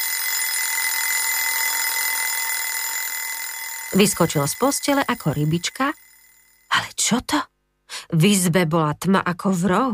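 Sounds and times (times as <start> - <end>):
electronic alarm clock ringing: 0.0 - 6.7
speech: 3.9 - 6.0, 7.0 - 7.5, 8.1 - 9.9.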